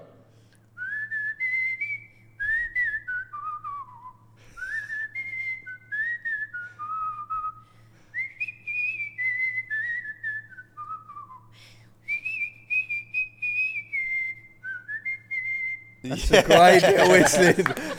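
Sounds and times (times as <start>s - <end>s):
person whistling a lilting tune: 0.8s - 16.0s
laughter: 16.1s - 17.9s
speech: 16.1s - 17.9s.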